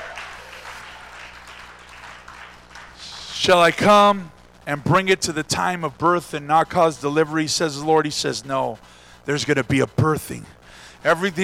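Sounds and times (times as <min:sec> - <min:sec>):
audience clapping hands: 0:00.0 - 0:03.9
speech: 0:03.4 - 0:11.4.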